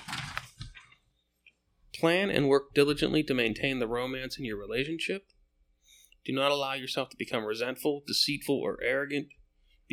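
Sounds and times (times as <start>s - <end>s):
page of a paper book being turned: 0.0s - 1.0s
speech: 2.0s - 5.4s, 6.2s - 9.9s.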